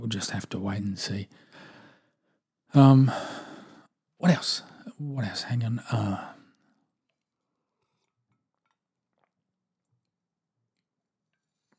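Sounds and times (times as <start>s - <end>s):
speech: 0.1s - 1.7s, 2.7s - 3.4s, 4.2s - 6.4s
person sipping water: 7.8s - 9.4s.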